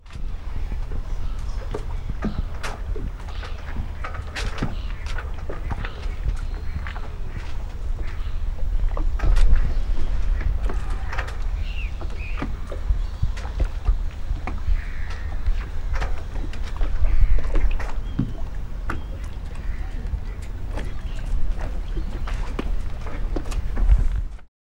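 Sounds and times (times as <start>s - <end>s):
ship rocking: 0.0s - 24.5s.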